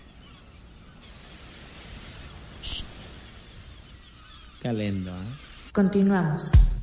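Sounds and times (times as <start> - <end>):
steady wash of sea noise: 0.0 - 4.6
speech: 4.6 - 6.7.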